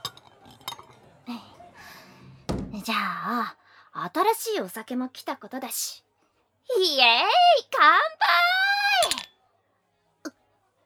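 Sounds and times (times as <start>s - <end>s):
empty glasses clinking as they are cleared from a bar table: 0.0s - 1.2s, 9.0s - 9.4s
speech: 2.9s - 6.1s, 6.7s - 8.5s.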